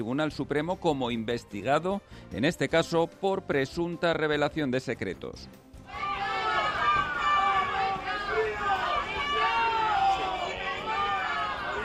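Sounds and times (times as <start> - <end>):
speech: 0.0 - 6.1
crowd booing and jeering at Spain's attorney general arriving at the Supreme Court: 5.9 - 11.8
people shouting and hooting: 5.9 - 11.8.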